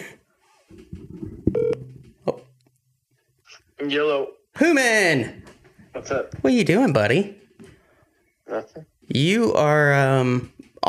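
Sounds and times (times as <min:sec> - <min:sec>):
telephone call ringing as a bright buzzy electronic beep: 0:01.6 - 0:01.9
speech: 0:03.8 - 0:07.4, 0:08.5 - 0:10.8.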